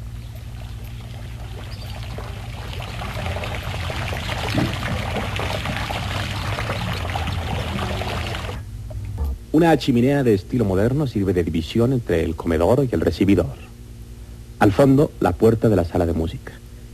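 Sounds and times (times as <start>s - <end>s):
running water from a public fountain: 0.0s - 8.6s
constant low hum: 0.0s - 15.1s
speech: 9.6s - 13.6s, 14.6s - 16.9s.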